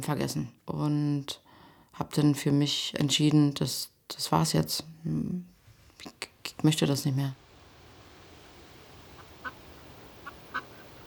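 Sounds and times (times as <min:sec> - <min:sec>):
speech: 0:00.0 - 0:01.4, 0:02.0 - 0:07.4
duck quacks: 0:09.2 - 0:09.6, 0:10.2 - 0:11.0.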